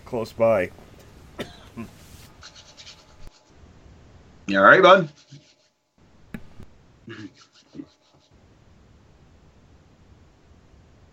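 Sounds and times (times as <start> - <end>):
room noise: 0.0 - 11.1
speech: 0.1 - 0.8, 1.4 - 2.0, 4.5 - 5.3, 7.1 - 7.9
person coughing: 1.4 - 2.0.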